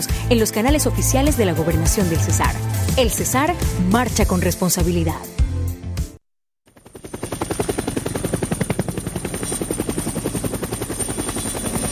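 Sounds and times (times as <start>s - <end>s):
speech: 0.0s - 5.4s
helicopter rotor thumping overhead: 6.7s - 11.9s.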